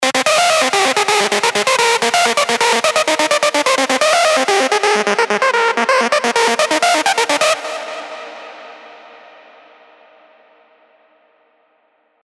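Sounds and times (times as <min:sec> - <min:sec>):
Sylenth1 synth lead: 0:00.0 - 0:09.5.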